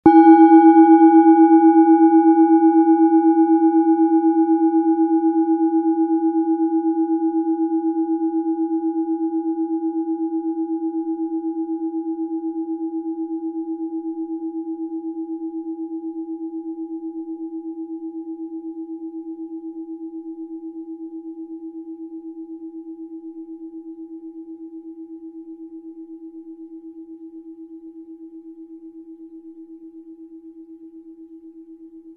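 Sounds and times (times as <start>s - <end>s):
iron singing bowl ringing: 0.0s - 10.3s.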